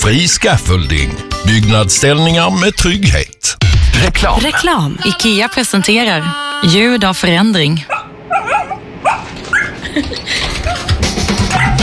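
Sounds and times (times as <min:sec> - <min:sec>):
speech: 0:00.1 - 0:08.0, 0:10.0 - 0:10.8
dog whimpering: 0:07.9 - 0:10.0, 0:10.6 - 0:11.8
laughter: 0:09.8 - 0:10.9.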